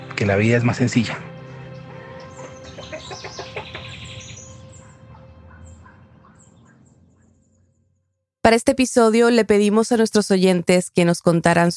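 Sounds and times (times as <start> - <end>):
speech: 0.2 - 1.3, 8.5 - 11.7
hen clucking in the countryside: 1.4 - 6.5.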